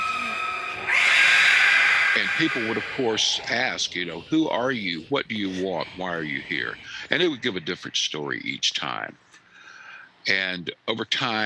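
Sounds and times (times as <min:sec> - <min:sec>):
eerie screaming screeching sound effect: 0:00.0 - 0:07.3
speech: 0:02.2 - 0:09.2, 0:10.2 - 0:11.4.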